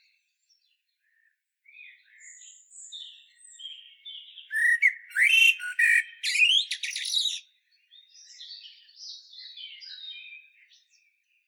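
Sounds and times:
common blackbird Turdus merula chattering calls: 0:04.6 - 0:07.4.

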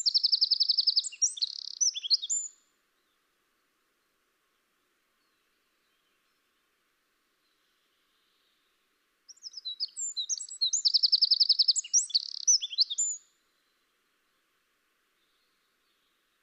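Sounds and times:
Eurasian wren song: 0:00.0 - 0:03.3, 0:05.2 - 0:14.5.

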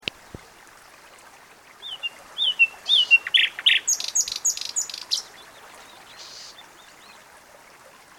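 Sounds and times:
common nightingale Luscinia megarhynchos singing: 0:01.8 - 0:07.2.

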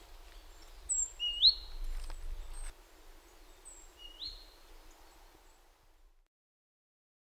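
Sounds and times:
soft hiss: 0:00.0 - 0:06.3
great tit whistling: 0:00.4 - 0:01.8, 0:03.4 - 0:05.6.

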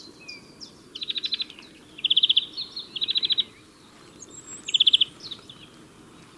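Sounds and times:
European greenfinch Chloris chloris twittering: 0:01.0 - 0:05.8.

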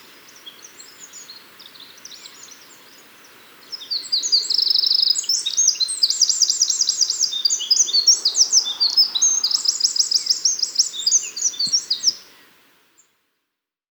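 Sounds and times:
Eurasian wren Troglodytes troglodytes song with fast high trills: 0:03.7 - 0:12.3.

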